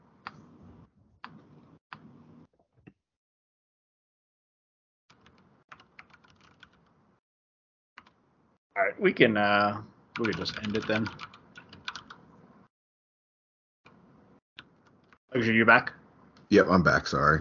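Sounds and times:
computer keyboard keys clicking: 5.1 - 6.9, 10.2 - 12.2
speech: 8.8 - 11.4, 15.4 - 17.3.

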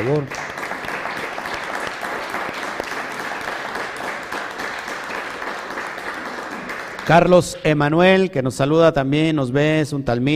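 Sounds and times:
speech: 0.0 - 0.4, 7.1 - 10.3
audience applause for Costa Rica: 0.0 - 7.4.

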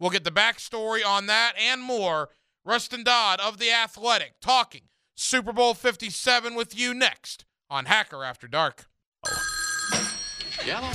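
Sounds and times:
speech: 0.0 - 9.6, 10.6 - 10.9
telephone ringing with a bright bell tone: 9.2 - 10.9.

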